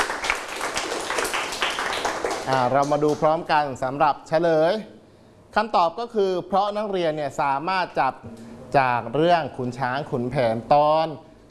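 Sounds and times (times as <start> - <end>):
students applauding in a classroom: 0.0 - 3.4
speech: 2.4 - 11.4.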